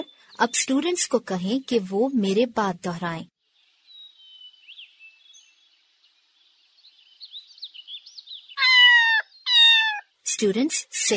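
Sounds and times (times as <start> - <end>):
speech: 0.4 - 3.3, 10.4 - 11.1
faint high wavering chirps: 8.4 - 10.1
cat meowing loudly: 8.6 - 10.1.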